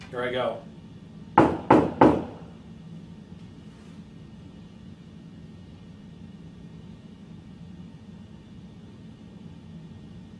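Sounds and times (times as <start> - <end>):
knocking on a door: 1.4 - 2.4.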